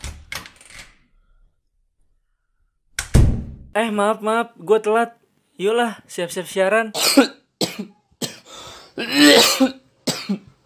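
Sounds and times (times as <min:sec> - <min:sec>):
speech: 0:03.8 - 0:07.9
harsh coughs: 0:07.0 - 0:10.5.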